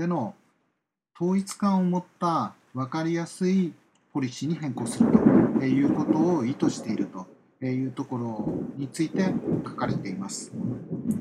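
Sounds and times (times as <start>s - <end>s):
speech: 0.0s - 0.4s, 1.2s - 11.2s
low rolling thunder rumbling: 4.4s - 11.2s.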